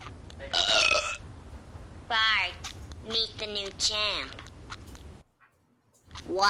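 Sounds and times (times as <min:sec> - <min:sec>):
loud burp: 0:00.5 - 0:01.2
speech: 0:03.1 - 0:04.4.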